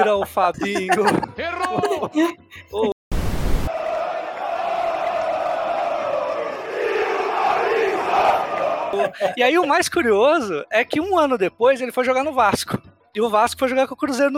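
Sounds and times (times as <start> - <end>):
laughter: 0.0 - 3.0, 8.4 - 9.6
speech: 0.0 - 3.0, 8.9 - 14.3
short burst of noise: 3.1 - 3.7
football stadium crowd chanting: 3.7 - 9.2.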